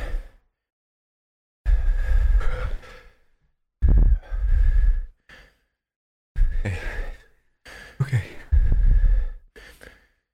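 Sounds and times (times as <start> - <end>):
heavy breathing into a microphone: 1.7 - 5.7, 6.4 - 10.2.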